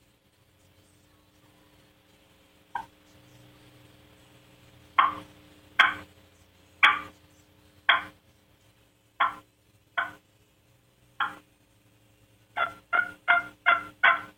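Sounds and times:
imitated turkey hen soft tree yelps: 2.8 - 3.0, 5.0 - 6.1, 6.8 - 7.1, 7.9 - 8.2, 9.2 - 10.2, 11.2 - 11.4, 12.6 - 14.3.

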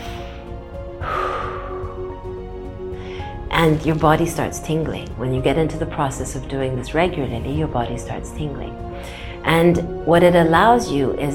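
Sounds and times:
long deep breath drawn in: 0.0 - 3.4, 8.9 - 9.4
steady soft musical drone: 0.0 - 11.3
speech: 3.6 - 11.3.

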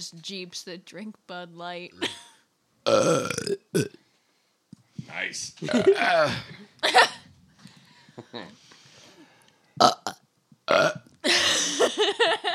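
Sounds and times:
speech: 0.0 - 4.0, 5.1 - 7.2, 8.3 - 8.7, 9.8 - 10.0
people burping: 2.8 - 4.0, 5.6 - 7.2, 9.8 - 11.8.

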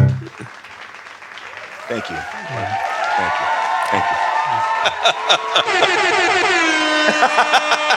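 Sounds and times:
laughter: 0.1 - 7.9
air horn blaring: 5.7 - 7.4.

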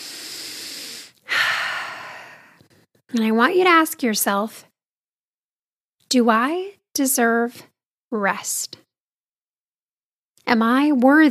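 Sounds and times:
person taking a deep breath during a guided relaxation exercise: 0.0 - 2.9
speech: 3.1 - 4.7, 6.1 - 8.8, 10.5 - 11.3.

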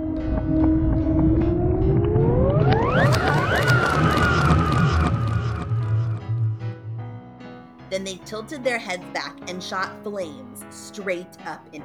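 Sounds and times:
loud siren-like wailing: 0.0 - 6.8
low rumbling background: 0.0 - 7.6
speech: 8.0 - 11.8.

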